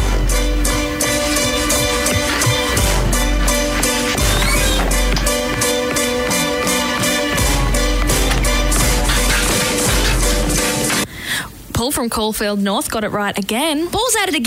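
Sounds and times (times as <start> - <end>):
upbeat show tune from a stage musical with percussive hits: 0.0 - 11.1
speech: 11.9 - 14.4.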